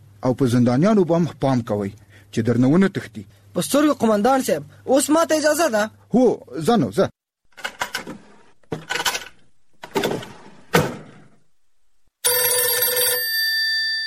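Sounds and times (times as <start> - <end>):
speech: 0.2 - 7.1
clattering door-like bangs and thumps: 9.8 - 11.4
telephone ringing with an incoming call: 12.2 - 14.0.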